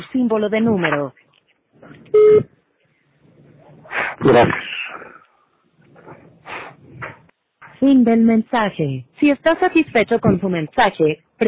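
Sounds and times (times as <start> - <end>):
speech: 0.1 - 1.2, 1.8 - 2.5, 4.2 - 4.6, 7.8 - 11.4
quiet hiss: 1.2 - 11.4
voicemail system electronic recording beep: 2.2 - 2.4.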